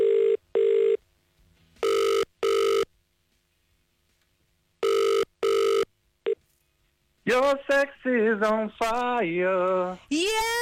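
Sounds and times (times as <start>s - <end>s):
telephone ringing tone on an outgoing call: 0.0s - 1.0s, 1.8s - 2.9s, 4.8s - 6.4s
speech: 7.3s - 10.6s.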